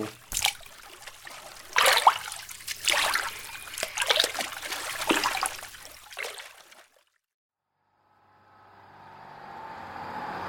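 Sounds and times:
paddle pounding and churning water: 0.0 - 7.1.

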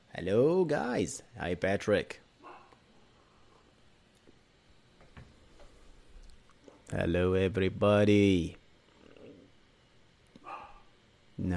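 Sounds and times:
speech: 0.2 - 2.2, 6.9 - 8.6
dog barking: 2.4 - 2.8, 10.4 - 10.9.

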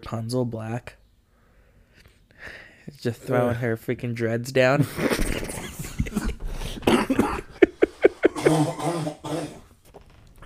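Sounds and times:
speech: 0.0 - 1.0, 2.4 - 5.5
laughter: 4.8 - 9.2
breathy throat noises: 6.3 - 7.6, 8.3 - 9.8
person coughing: 6.8 - 9.7.

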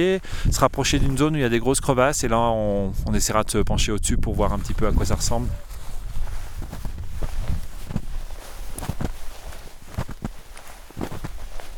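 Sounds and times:
speech: 0.0 - 5.7
slow footsteps crunching through snow on a glacier: 4.5 - 11.7.

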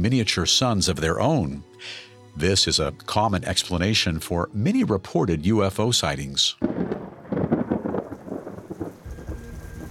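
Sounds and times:
speech: 0.0 - 6.9
deep rolling rumble of thunder: 6.6 - 9.9
heavy rain pouring down over Fatima: 6.6 - 9.9.

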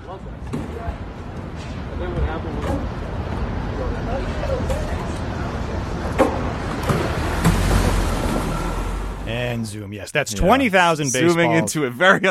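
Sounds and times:
chatter: 0.0 - 7.3, 9.3 - 12.2
heavy truck engine rumbling and pulling away: 3.0 - 9.8
speech: 9.4 - 12.2.

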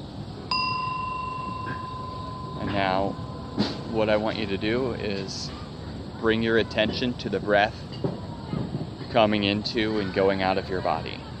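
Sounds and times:
faint hiss: 0.0 - 11.3
meditation bell struck at the start of a practice: 0.5 - 5.0
speech: 4.0 - 8.0, 9.1 - 11.3.

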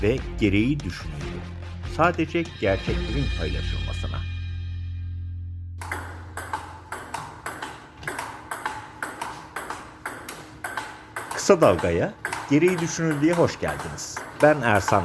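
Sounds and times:
speech: 0.0 - 1.3, 2.0 - 4.2, 11.5 - 15.0
sustained low tone: 2.9 - 5.8
table tennis ball clicking between paddles during a table tennis match: 5.8 - 15.0.

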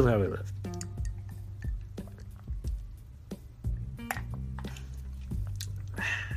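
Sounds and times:
speech: 0.0 - 0.6
low steady hum: 0.0 - 6.3
sipping water: 0.6 - 2.9, 3.8 - 6.3.

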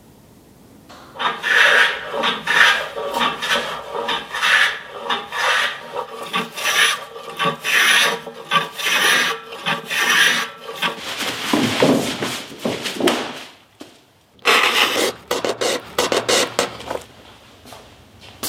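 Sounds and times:
rasp scraping wood while making a large taiko drum: 1.2 - 12.0, 14.4 - 17.1.

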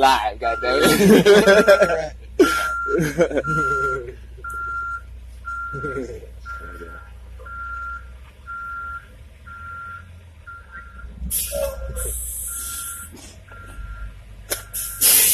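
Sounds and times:
speech: 0.0 - 2.2, 3.0 - 4.2
low truck engine rumble: 0.0 - 15.3
truck reversing alarm beeping at a workplace: 0.1 - 15.3
laughter: 0.7 - 4.2, 5.7 - 6.2.

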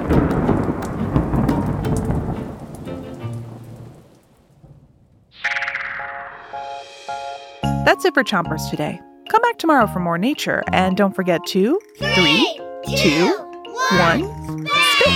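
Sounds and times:
heavy rain downpour: 0.0 - 4.8
deep rumbling thunder: 0.0 - 5.4
speech: 8.0 - 15.1.

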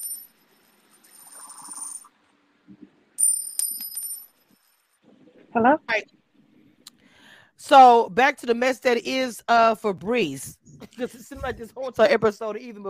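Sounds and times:
coins dropping and clinking sound effect: 0.0 - 2.1, 3.2 - 4.8
speech: 5.6 - 6.2, 7.7 - 12.8.

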